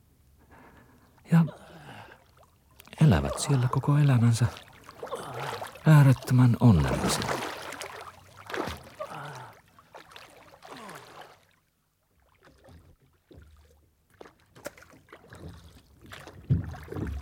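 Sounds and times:
oars rowing a boat through water: 0.8 - 11.6, 12.2 - 17.2
water dripping from oars: 2.2 - 9.4
speech: 3.0 - 4.7, 5.8 - 7.5.

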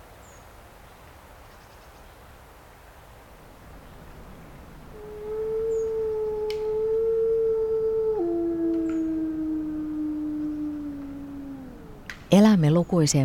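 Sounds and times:
faint hiss: 0.0 - 13.2
lone wolf howling: 3.6 - 12.9
speech: 12.3 - 13.2.

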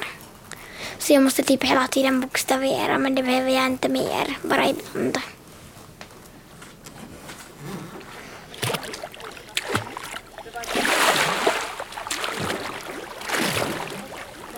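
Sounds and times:
speech: 1.0 - 5.4
children swimming and splashing in water: 7.9 - 14.5.

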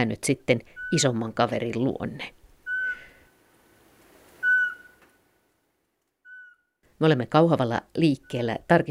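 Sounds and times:
speech: 0.0 - 2.4, 7.0 - 8.8
Eurasian pygmy owl whistling call at a nest box in Kauhava Finland: 0.7 - 1.1, 2.6 - 3.2, 4.4 - 5.2, 6.2 - 6.7.

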